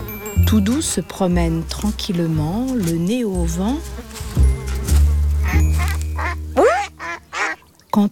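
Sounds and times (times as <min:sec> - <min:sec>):
speech: 0:00.5 - 0:04.0, 0:08.0 - 0:08.1
ducks quacking near a large pond: 0:05.4 - 0:07.6.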